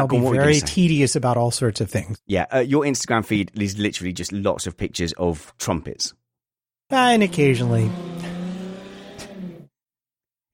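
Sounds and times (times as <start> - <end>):
speech: 0.0 - 6.2, 6.9 - 8.2
very loud car exhaust revving with deep engine drone: 7.2 - 9.7.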